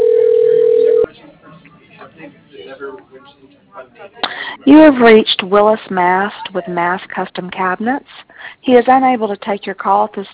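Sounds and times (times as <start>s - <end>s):
single-pitched telephone dial tone while a phone line is dialing out: 0.0s - 1.1s
low noise: 0.7s - 10.3s
speech: 3.2s - 10.3s.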